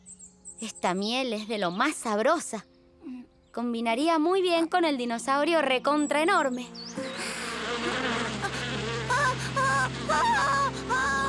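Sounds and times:
speech: 0:00.6 - 0:02.7, 0:03.6 - 0:07.1
swarm of bees buzzing around a honeycomb: 0:06.4 - 0:11.2.

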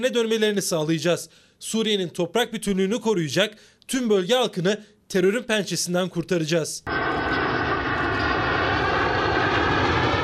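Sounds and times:
speech: 0:00.0 - 0:07.4
F-16 fighter jets taking off in Diyarbakır and İncirlik, Turkey: 0:06.9 - 0:10.2.

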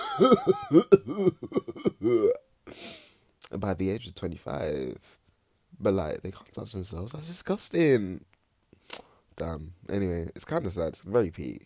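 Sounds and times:
person imitating the harsh cough of a drinker and smoker: 0:00.0 - 0:02.4
speech: 0:00.2 - 0:05.2, 0:05.8 - 0:08.3, 0:08.9 - 0:11.6.

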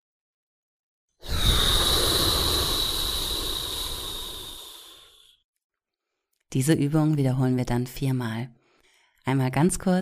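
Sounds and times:
slow hissing exhale through the mouth in a breathing exercise: 0:01.2 - 0:05.4
speech: 0:06.5 - 0:08.6, 0:09.3 - 0:10.0.

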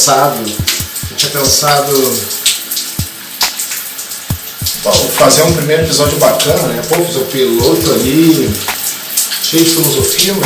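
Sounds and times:
speech: 0:00.0 - 0:00.6, 0:01.2 - 0:02.4, 0:04.8 - 0:08.8, 0:09.5 - 0:10.4
shower water running: 0:00.0 - 0:10.4
low thumps: 0:00.6 - 0:01.2, 0:04.3 - 0:07.0.

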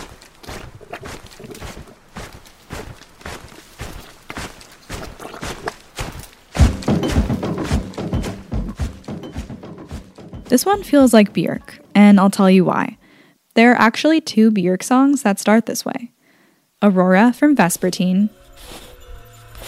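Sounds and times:
heavy stomping footsteps marching through thick mud: 0:00.0 - 0:12.0
speech: 0:10.5 - 0:13.0, 0:13.6 - 0:16.2, 0:16.8 - 0:18.8.

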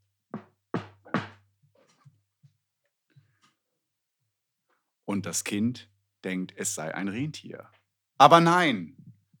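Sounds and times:
firm resonant knocking on a door: 0:00.4 - 0:01.4
speech: 0:05.1 - 0:09.0.

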